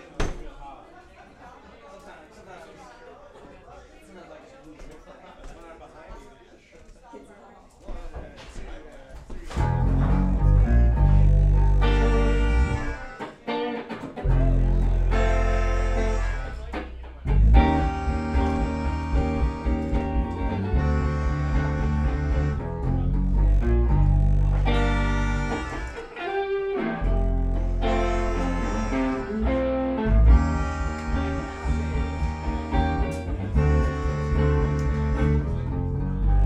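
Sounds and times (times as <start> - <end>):
blues song with full band and deep bass: 9.6 - 36.4.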